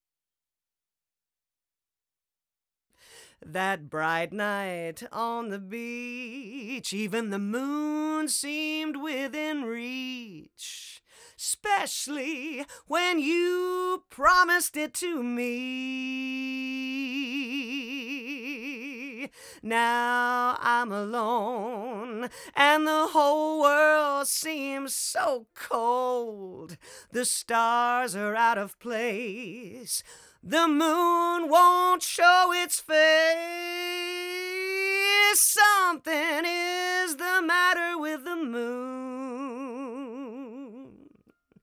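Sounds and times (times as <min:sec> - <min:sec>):
equalized lead vocals: 0:03.1 - 0:41.6.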